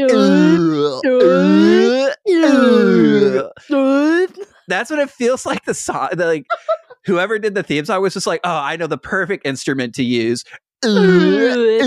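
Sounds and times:
voice imitating a flipped groan tube: 0.0s - 4.4s, 10.8s - 11.8s
speech: 3.4s - 3.8s, 4.7s - 11.8s
laughter: 5.5s - 7.2s.

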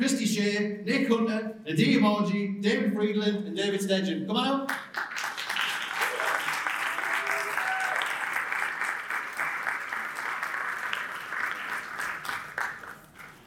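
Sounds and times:
speech: 0.0s - 5.1s
large crowd applauding panelists: 4.7s - 13.4s.

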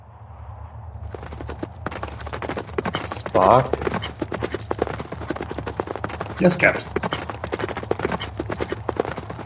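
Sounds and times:
horse hooves clip-clopping: 1.0s - 9.4s
speech: 3.4s - 3.9s, 6.4s - 6.9s.

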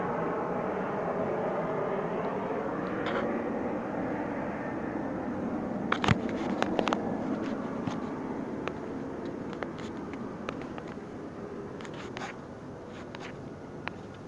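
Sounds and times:
jet airliner roaring overhead: 0.0s - 14.2s
faint clicks and taps: 5.9s - 11.0s, 13.0s - 14.2s.

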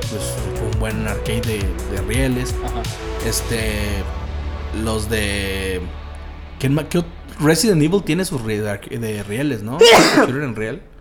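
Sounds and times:
speech: 0.1s - 6.0s, 6.6s - 10.9s
loud sneeze: 9.8s - 10.4s.

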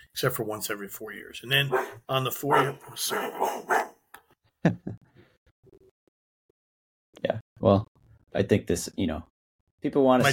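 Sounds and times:
speech: 0.2s - 3.9s, 4.6s - 4.9s, 7.2s - 10.3s
dog barking: 1.7s - 4.0s.

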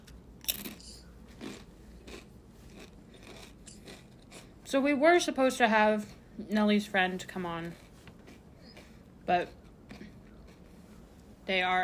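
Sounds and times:
crunchy chewing: 0.0s - 4.6s, 7.7s - 11.1s
speech: 4.7s - 7.8s, 9.3s - 9.6s, 11.5s - 11.8s.

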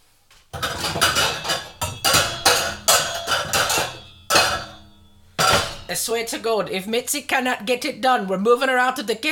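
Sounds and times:
small saucepan clanking on a stove: 0.6s - 6.6s
speech: 5.9s - 9.2s.

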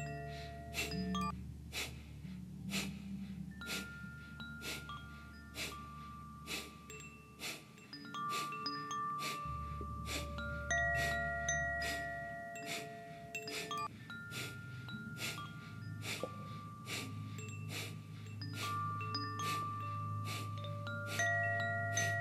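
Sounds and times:
soft sustained humming tones: 0.0s - 22.1s
sharp nasal exhales during a pranayama breathing exercise: 4.6s - 11.2s, 11.8s - 21.4s.

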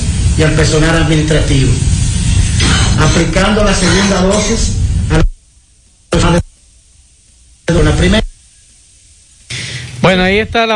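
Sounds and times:
speech: 0.4s - 1.9s, 2.6s - 5.3s, 7.7s - 8.2s, 10.1s - 10.7s
person coughing in harsh loud bursts: 2.6s - 3.2s.

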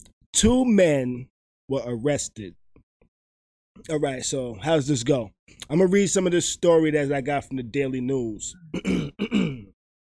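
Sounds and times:
speech: 0.4s - 2.6s, 3.8s - 9.4s
man clearing his throat close to the mic: 8.6s - 9.8s.

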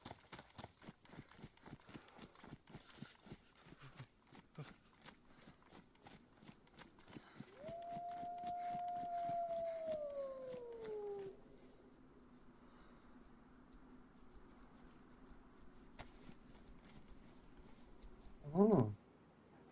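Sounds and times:
low hum: 0.9s - 19.7s
wild dog howling: 7.4s - 11.9s.

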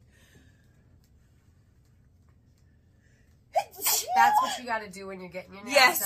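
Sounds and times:
person sneezing: 3.6s - 4.6s
speech: 4.2s - 6.0s.

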